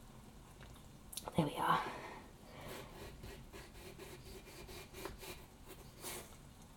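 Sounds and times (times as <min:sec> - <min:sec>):
speech: 0:01.3 - 0:02.0
knife sawing through large potato lengthways: 0:02.6 - 0:06.3.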